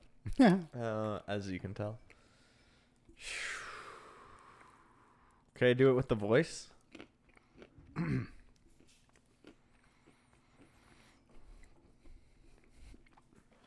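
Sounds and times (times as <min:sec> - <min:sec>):
speech: 0:00.3 - 0:02.2, 0:05.6 - 0:06.7, 0:08.0 - 0:08.4
crunching and chewing of peanuts: 0:06.6 - 0:13.6.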